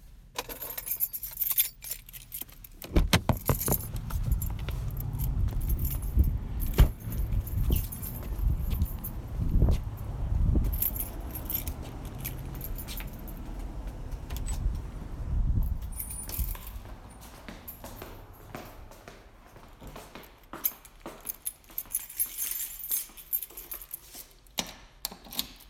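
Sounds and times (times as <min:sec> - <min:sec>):
keys jangling at a post office box: 0:00.4 - 0:14.7, 0:15.6 - 0:18.8, 0:20.6 - 0:25.6
low rumbling background: 0:02.7 - 0:17.1.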